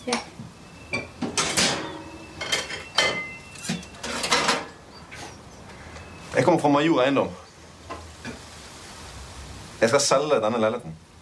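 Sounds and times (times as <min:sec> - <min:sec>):
plates and cutlery clattering while dishes are washed up: 0:00.9 - 0:04.8
speech: 0:06.4 - 0:07.4, 0:09.8 - 0:11.0.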